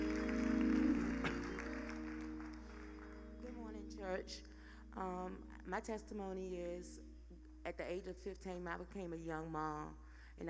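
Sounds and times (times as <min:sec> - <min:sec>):
audience applause: 0:00.0 - 0:03.5
sustained organ chords: 0:00.0 - 0:08.4
speech: 0:04.2 - 0:10.4.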